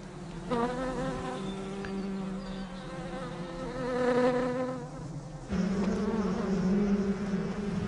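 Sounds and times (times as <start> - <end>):
hundreds of bees buzzing around hive in dry tree trunk: 0.0 - 7.8.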